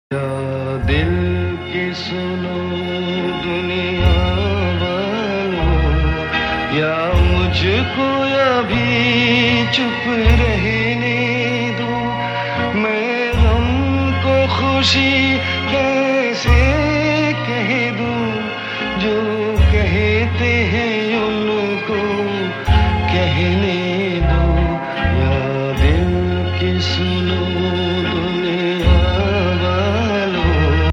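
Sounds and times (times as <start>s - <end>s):
old sad Hindi ringtone melody: 0.2s - 30.8s.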